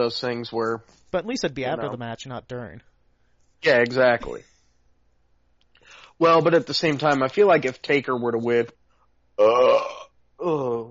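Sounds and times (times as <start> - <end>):
speech: 0.0 - 2.9, 3.6 - 4.5, 6.2 - 8.8, 9.4 - 10.8
loud burps: 9.4 - 10.8.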